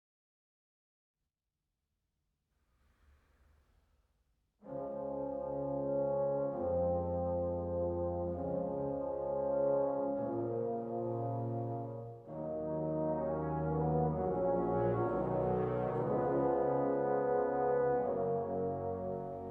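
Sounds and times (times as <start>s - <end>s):
brass chorale: 4.6s - 19.5s.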